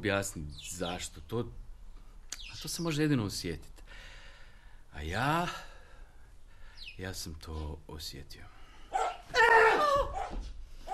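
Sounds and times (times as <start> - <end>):
speech: 0.0 - 1.6, 2.6 - 4.1, 4.9 - 5.7, 7.0 - 8.6, 9.3 - 10.6
dog barking: 8.9 - 10.9.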